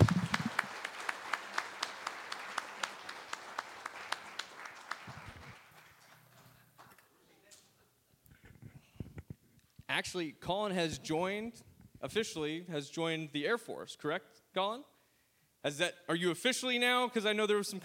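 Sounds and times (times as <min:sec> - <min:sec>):
audience applause: 0:00.0 - 0:06.5
sharp steady rhythmic claps: 0:00.0 - 0:07.0
speech: 0:09.9 - 0:14.9, 0:15.6 - 0:17.8.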